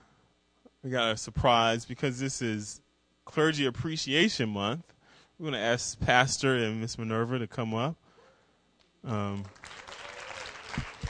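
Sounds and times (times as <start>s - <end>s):
speech: 0.8s - 8.0s, 9.0s - 9.8s
congregation clapping: 9.4s - 11.0s.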